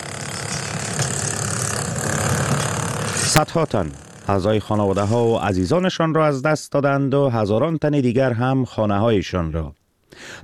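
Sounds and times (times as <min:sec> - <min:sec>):
heavy machinery engine idling while clearing earthquake rubble: 0:00.0 - 0:05.7
speech: 0:03.3 - 0:10.4.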